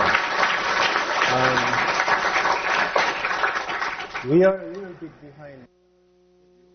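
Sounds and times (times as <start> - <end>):
crowd applauding: 0.0 - 5.1
speech: 4.2 - 5.8.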